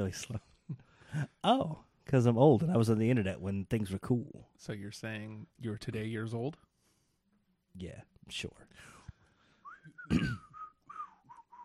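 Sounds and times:
speech: 0.0 - 0.5, 1.1 - 6.7, 7.8 - 9.0, 10.1 - 10.4
person whistling a short melodic tune: 9.6 - 11.6.

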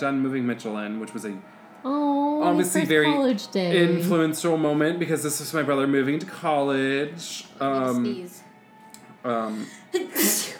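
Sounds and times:
speech: 0.0 - 8.4, 9.2 - 10.5
single sharp loud sneeze: 10.0 - 10.5.

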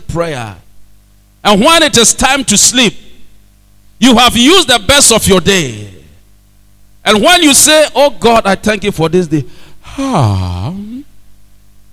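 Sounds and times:
speech: 0.1 - 0.6, 1.4 - 3.0, 4.0 - 6.0, 7.1 - 10.8
male preacher imitating a long loud yawn: 9.8 - 11.1.

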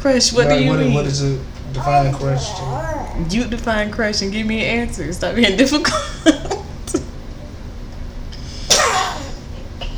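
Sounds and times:
speech: 0.0 - 6.6
person sneezing: 8.7 - 9.9.

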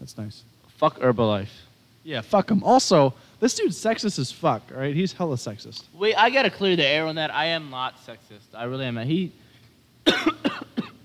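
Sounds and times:
speech: 0.1 - 9.4, 10.0 - 10.6
person coughing: 10.0 - 11.0.

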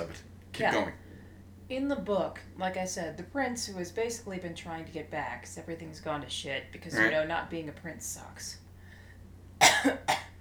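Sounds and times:
speech: 0.6 - 1.0, 1.7 - 8.6, 9.8 - 10.2
harsh coughs: 9.6 - 10.4.

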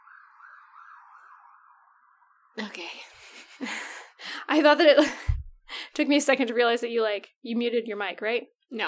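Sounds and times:
ambulance siren wailing: 0.0 - 2.6
speech: 2.6 - 5.3, 6.0 - 8.8.

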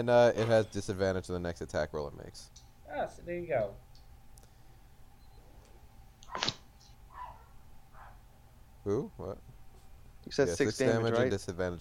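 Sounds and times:
speech: 0.0 - 3.9, 6.3 - 6.6, 8.8 - 9.5, 10.2 - 11.8
low hum: 0.0 - 11.8
dog barking: 7.1 - 8.2.

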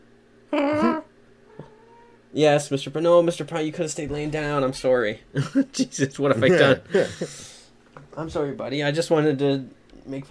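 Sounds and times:
speech: 0.5 - 0.9, 2.3 - 7.5, 8.2 - 10.2
domestic cat giving a drawn-out wavering meow: 1.5 - 2.2
laughter: 5.4 - 7.5.

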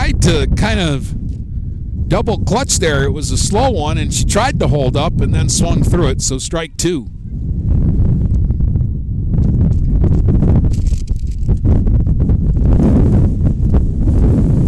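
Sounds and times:
strong wind gusts buffeting the microphone at an outdoor ball game: 0.0 - 14.6
speech: 0.3 - 1.2, 2.1 - 7.5
rustling and crackling: 9.4 - 11.8.

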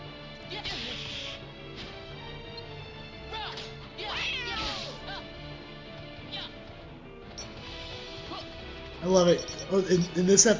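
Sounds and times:
video game music: 0.0 - 10.5
video game cat meowing and yowling during a fight: 4.0 - 4.8
speech: 9.1 - 10.5.

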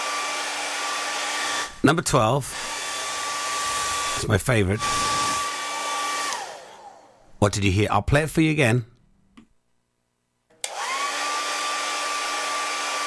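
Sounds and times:
hairdryer blowing: 0.0 - 7.4, 10.6 - 13.0
speech: 1.8 - 2.8, 4.2 - 5.1, 7.4 - 8.9.

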